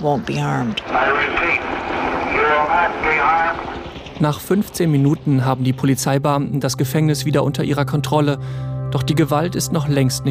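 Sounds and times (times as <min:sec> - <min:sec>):
distorted amplified loudspeaker voice making an announcement: 0:00.0 - 0:03.6
helicopter roar: 0:00.0 - 0:08.0
speech: 0:00.0 - 0:10.2.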